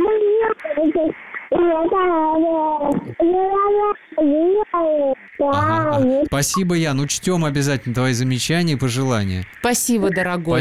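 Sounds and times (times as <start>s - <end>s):
infant babbling: 0.0s - 6.3s
speech: 0.8s - 10.5s.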